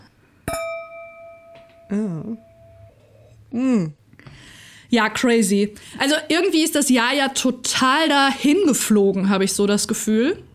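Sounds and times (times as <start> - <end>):
glasses clinking in a toast: 0.5 - 3.0
speech: 1.9 - 2.5, 3.5 - 4.0, 4.9 - 10.5.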